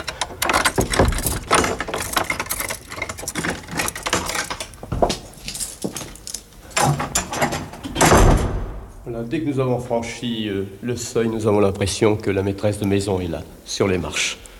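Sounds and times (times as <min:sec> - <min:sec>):
metallic latch and key-like jangles: 0:00.0 - 0:08.4
old house door being opened: 0:00.0 - 0:09.0
speech: 0:09.2 - 0:14.4.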